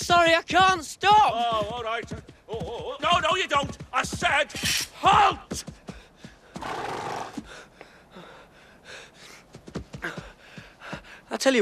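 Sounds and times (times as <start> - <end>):
speech: 0.1 - 5.7, 11.3 - 11.6
horse snorting and huffing: 6.5 - 7.5
horse whinnying: 6.6 - 7.4.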